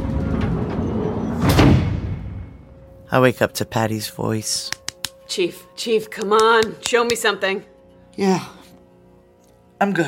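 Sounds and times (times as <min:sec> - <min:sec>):
heavy engine room door sliding shut on a base: 0:00.0 - 0:02.4
speech: 0:03.1 - 0:08.6, 0:09.8 - 0:10.0.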